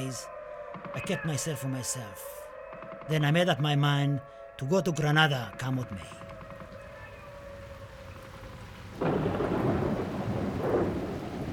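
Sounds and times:
speech: 0.0s - 2.4s, 3.1s - 6.2s
thunder rumbling in a thunderstorm: 6.2s - 11.5s
rain hissing: 6.4s - 11.5s.

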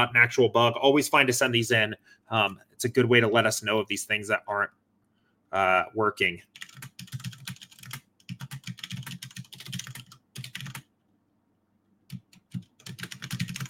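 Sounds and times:
speech: 0.0s - 4.8s, 5.5s - 6.9s
typing on a computer keyboard: 6.5s - 10.8s, 12.1s - 13.6s.

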